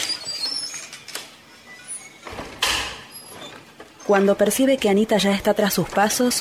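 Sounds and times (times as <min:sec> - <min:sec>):
door opening: 0:00.0 - 0:04.4
speech: 0:04.1 - 0:06.3.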